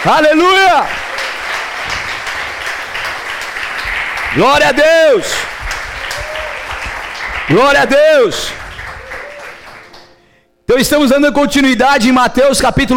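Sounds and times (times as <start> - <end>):
speech: 0.0 - 1.0, 4.3 - 5.5, 7.5 - 8.6, 10.7 - 12.9
audience applauding loudly: 0.0 - 10.2.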